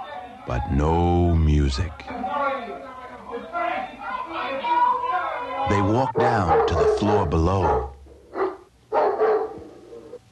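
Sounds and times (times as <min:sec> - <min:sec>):
speech: 0:00.5 - 0:04.8, 0:05.7 - 0:07.9
dog barking aggressively: 0:06.2 - 0:09.7.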